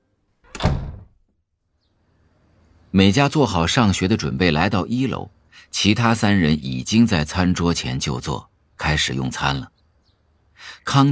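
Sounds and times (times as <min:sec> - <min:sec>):
room door being shut: 0:00.4 - 0:01.2
speech: 0:02.9 - 0:09.8, 0:10.6 - 0:11.1.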